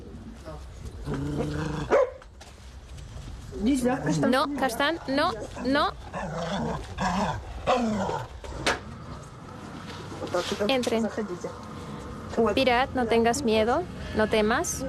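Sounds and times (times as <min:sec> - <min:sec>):
speech: 0:01.1 - 0:02.0, 0:03.6 - 0:08.3, 0:10.3 - 0:11.7, 0:12.3 - 0:14.8
dog growling and barking: 0:01.1 - 0:02.2, 0:05.4 - 0:08.9.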